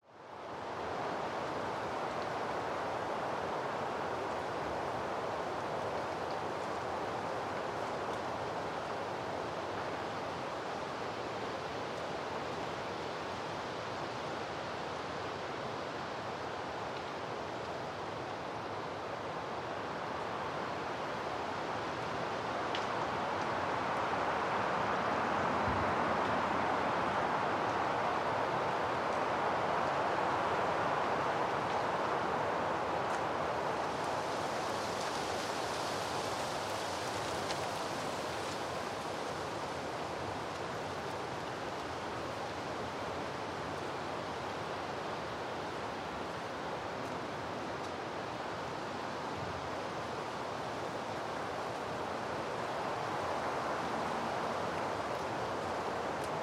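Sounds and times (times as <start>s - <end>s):
wind in the forest: 0.0s - 56.4s.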